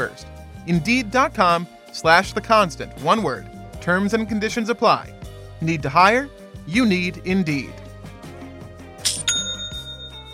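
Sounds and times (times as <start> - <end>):
speech: 0.0 - 7.8
Shopify online store sale notification chime: 9.1 - 10.3.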